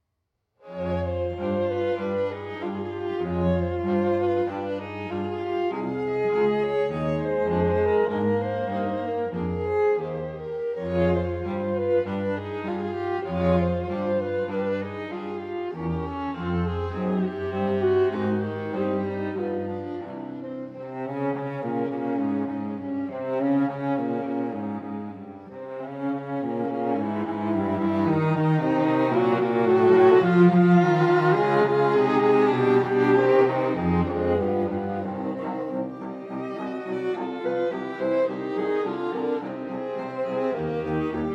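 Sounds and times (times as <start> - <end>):
string quartet playing in C minor: 0.6 - 41.3.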